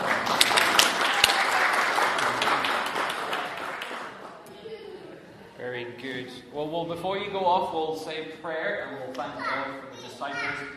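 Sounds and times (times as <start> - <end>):
crowd applauding: 0.0 - 4.5
speech: 6.8 - 10.7.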